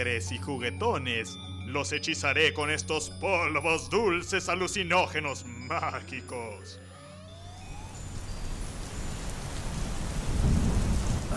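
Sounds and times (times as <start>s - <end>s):
speech: 0.0s - 6.9s
steady dense rain: 7.5s - 11.3s
deep rolling thunder: 8.1s - 11.3s.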